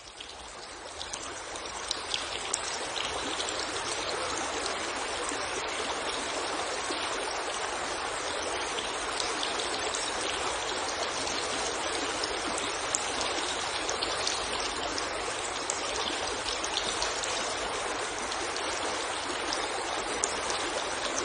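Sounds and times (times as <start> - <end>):
bubbling splashes and drips: 0.0 - 21.2
clear stream water rushing and trickling: 0.0 - 21.2.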